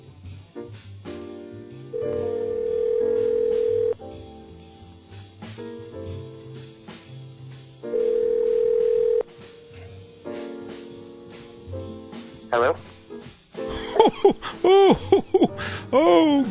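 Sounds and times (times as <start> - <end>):
upbeat music bed: 0.0 - 16.4
telephone line ringing through the earpiece: 2.0 - 4.0, 7.9 - 9.2
laughter: 13.7 - 16.4.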